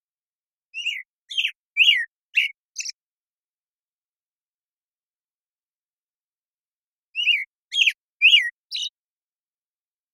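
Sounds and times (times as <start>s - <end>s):
American Robin Turdus migratorius singing morning song: 0.7s - 3.0s, 7.1s - 9.0s.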